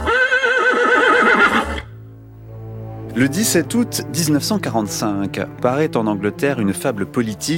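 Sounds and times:
horse whinnying with a wavering pitch: 0.0s - 2.0s
speech: 3.2s - 7.5s.

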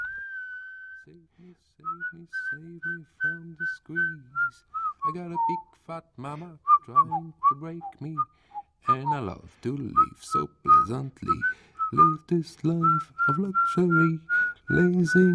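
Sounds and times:
person whistling a tune: 0.0s - 1.2s, 1.8s - 5.8s, 6.6s - 15.3s
speech: 1.1s - 15.3s.

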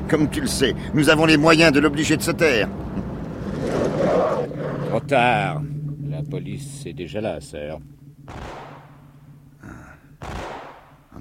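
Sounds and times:
noisy rumble: 0.0s - 11.1s
speech: 0.1s - 3.0s, 3.9s - 8.6s, 10.2s - 10.5s
gunshots: 8.3s - 9.0s, 10.2s - 11.1s.

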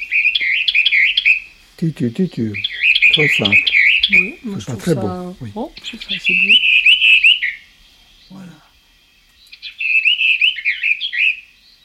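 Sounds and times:
bird singing a regional French song variant played from a record: 0.0s - 11.8s
speech: 1.8s - 6.6s.

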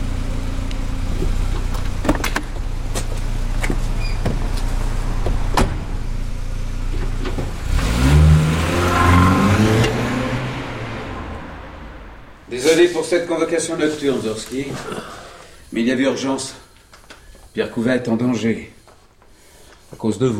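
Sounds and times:
car engine revving as the vehicle pulls away: 0.0s - 12.9s
car engine idling: 0.0s - 15.7s
car engine clicks and knocks: 0.7s - 6.0s, 6.8s - 7.7s
speech: 12.7s - 16.6s, 17.6s - 18.7s, 20.0s - 20.3s.

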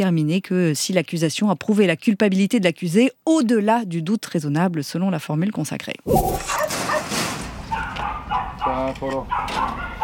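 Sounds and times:
speech: 0.0s - 6.7s, 8.6s - 9.9s
chorus of dogs barking and yelping at a dog farm: 6.2s - 10.0s.

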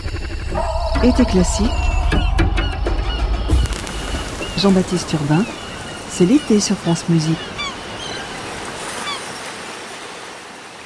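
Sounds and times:
steady wash of surf noise: 0.0s - 10.8s
seagull giving short rising cries: 0.5s - 8.4s
speech: 1.0s - 1.8s, 4.6s - 7.5s.

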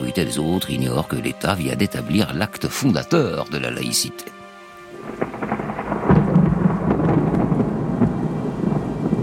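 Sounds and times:
steady rain falling in a village: 0.0s - 9.2s
speech: 0.2s - 4.4s
low rolling rumble: 5.0s - 9.2s.

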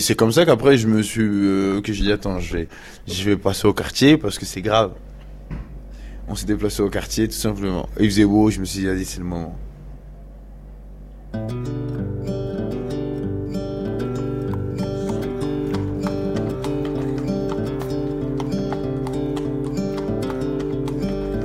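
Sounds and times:
speech: 0.0s - 5.6s, 6.3s - 9.7s, 11.3s - 12.0s
sustained droning musical backdrop: 11.5s - 21.4s
horse hooves clip-clopping: 14.4s - 21.4s.

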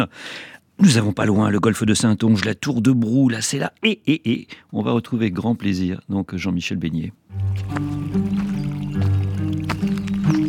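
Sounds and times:
speech: 0.0s - 8.2s
water flowing in a stream: 7.3s - 10.4s.

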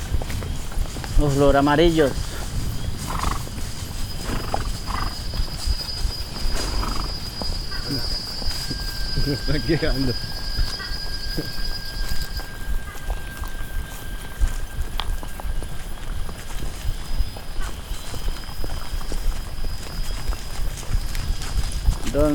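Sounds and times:
noise: 0.0s - 22.3s
quarter horse hooves clip-clopping: 0.0s - 22.3s
speech: 1.2s - 2.3s, 9.3s - 10.3s, 11.4s - 11.6s.

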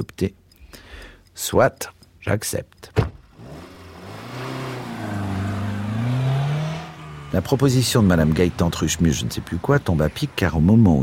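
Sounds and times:
speech: 0.0s - 0.8s, 1.4s - 3.0s, 7.3s - 11.0s
car engine revving as the car pulls away and accelerates: 3.0s - 11.0s.

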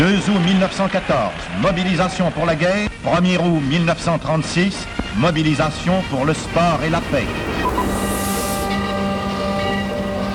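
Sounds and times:
speech: 0.0s - 7.9s
train rumbling at the Gare de l'Est railway station in Paris: 3.6s - 10.3s
sustained tonal hum of a train at a railway station: 4.2s - 10.3s
train hiss at a railway station: 4.6s - 10.3s.

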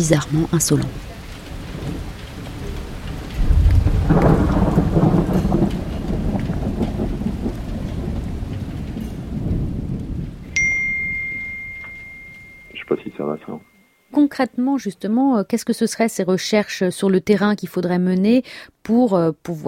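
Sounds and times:
speech: 0.0s - 1.1s, 14.4s - 19.6s
heavy downpour hissing: 0.0s - 11.8s
deep roll of thunder: 0.0s - 13.1s
brief bell-like ding: 10.6s - 14.0s.

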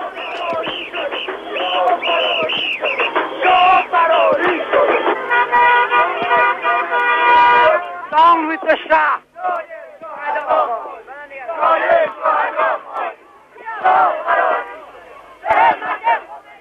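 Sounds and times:
many car horns honking in city streets: 0.0s - 8.6s, 13.8s - 16.2s
huge crowd shouting, cheering and chanting in the streets: 0.0s - 16.5s.

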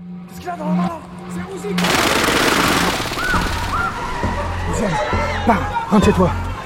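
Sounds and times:
speech: 0.5s - 0.9s, 5.5s - 6.4s
Uzi submachine gun firing bursts: 1.8s - 4.3s.

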